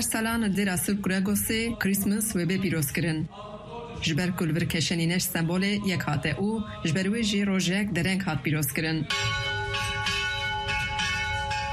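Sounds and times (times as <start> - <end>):
speech: 0.0 - 9.4
church bells ringing at an Armenian church for a Christmas celebration: 9.1 - 11.7.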